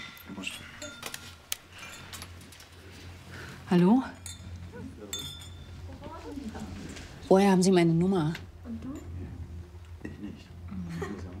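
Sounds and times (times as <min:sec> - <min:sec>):
glasses clinking together in a toast: 0:00.0 - 0:02.4, 0:04.0 - 0:06.0
low murmur: 0:00.0 - 0:11.3
speech: 0:03.7 - 0:04.2, 0:07.3 - 0:08.4.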